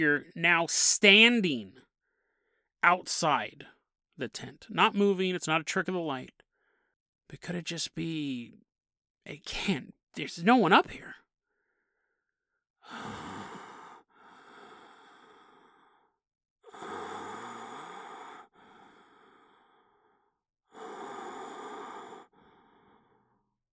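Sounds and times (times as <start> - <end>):
speech: 0.0 - 1.8, 2.8 - 6.4, 7.3 - 8.6, 9.2 - 11.2, 12.9 - 13.2
rasping heavy breathing: 12.9 - 23.4.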